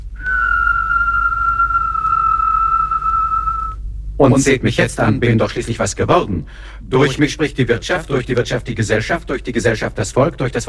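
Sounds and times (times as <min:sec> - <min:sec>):
person whistling one long steady note: 0:00.1 - 0:03.8
speech: 0:04.2 - 0:10.6.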